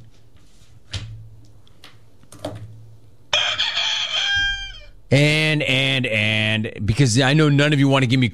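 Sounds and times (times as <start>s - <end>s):
rooster crowing: 3.3s - 5.0s
speech: 5.1s - 8.3s.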